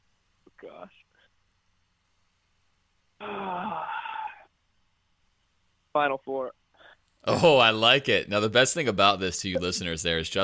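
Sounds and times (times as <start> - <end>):
drawn-out voiced gasp from one person: 3.2 - 4.5
speech: 6.0 - 6.6, 7.2 - 10.4.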